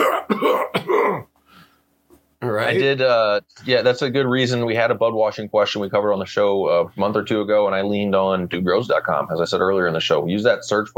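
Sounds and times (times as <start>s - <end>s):
harsh raspy coughs: 0.0s - 1.4s
speech: 2.5s - 10.9s.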